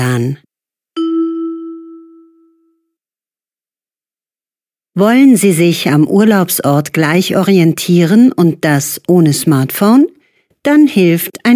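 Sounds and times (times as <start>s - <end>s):
speech: 0.0s - 0.5s, 5.0s - 11.5s
single electronic chime in a language lesson: 1.0s - 2.9s.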